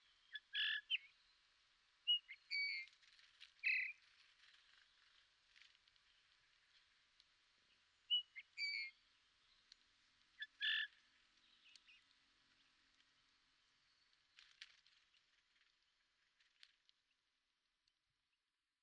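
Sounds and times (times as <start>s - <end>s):
Eurasian bullfinch Pyrrhula pyrrhula giving whistled calls: 0.3s - 1.1s, 2.1s - 2.9s, 8.1s - 9.0s, 10.4s - 10.9s.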